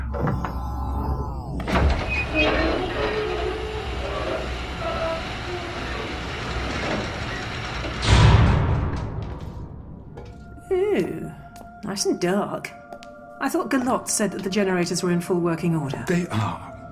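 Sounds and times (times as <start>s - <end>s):
heavy silo doors grinding and sliding open: 0.0s - 9.9s
loud low thud of silo doors coming to rest: 8.0s - 10.2s
speech: 12.0s - 12.8s, 13.4s - 16.7s.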